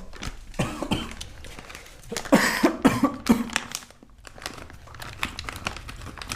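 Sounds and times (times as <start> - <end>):
light crinkling rustling noises: 0.0 - 6.3
harsh coughing from spicy food: 0.6 - 1.2, 2.3 - 3.6.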